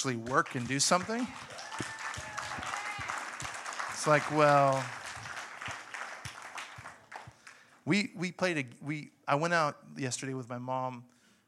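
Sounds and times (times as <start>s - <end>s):
speech: 0.0s - 1.7s, 4.0s - 5.0s, 7.9s - 11.1s
weak half-hearted audience clapping: 0.0s - 7.8s.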